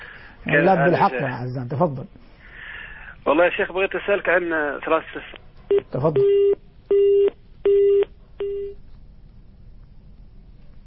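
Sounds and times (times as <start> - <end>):
speech: 0.5 - 2.4, 3.2 - 7.1
telephone busy tone after dropped phone-in call: 6.3 - 8.8.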